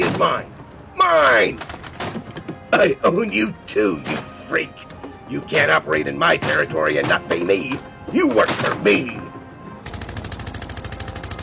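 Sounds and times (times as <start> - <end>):
speech: 0.2 - 2.2, 2.8 - 9.3
machine gun fire: 9.8 - 11.4.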